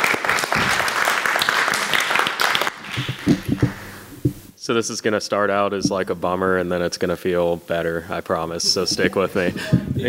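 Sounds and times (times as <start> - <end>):
crowd clapping for a volunteer: 0.0 - 4.0
speech: 4.7 - 10.0.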